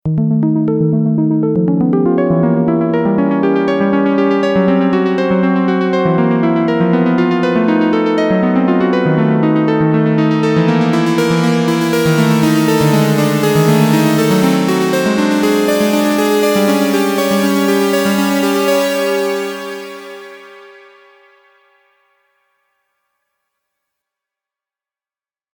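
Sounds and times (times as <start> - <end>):
arpeggiated melody: 0.0 - 21.6.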